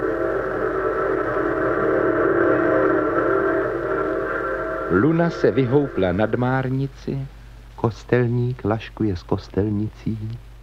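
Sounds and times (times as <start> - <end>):
night train whistle: 0.0 - 6.9
low rumbling: 0.0 - 7.8
speech: 4.9 - 10.5.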